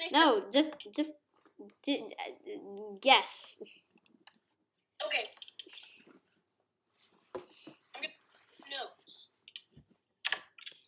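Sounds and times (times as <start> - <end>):
speech: 0.1 - 3.9, 5.0 - 5.8
loud computer keyboard typing: 5.0 - 6.0, 9.4 - 10.8.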